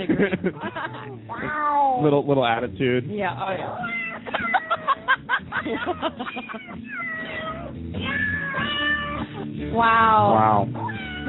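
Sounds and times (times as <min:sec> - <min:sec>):
laughter: 0:00.0 - 0:01.2, 0:04.2 - 0:07.6, 0:09.0 - 0:09.6
speech: 0:00.0 - 0:04.5, 0:05.6 - 0:11.2
cat meowing in drawn-out yowls: 0:01.3 - 0:02.0, 0:03.6 - 0:04.9, 0:06.3 - 0:09.2, 0:09.8 - 0:11.2.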